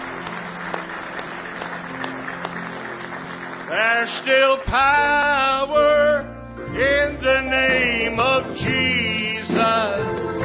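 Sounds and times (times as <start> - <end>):
audience clapping hands in praise: 0.0 - 5.0
speech: 3.7 - 10.4.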